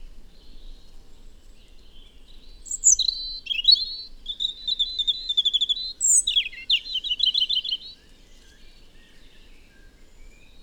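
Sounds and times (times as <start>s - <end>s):
European robin Erithacus rubecula song: 2.6s - 8.0s.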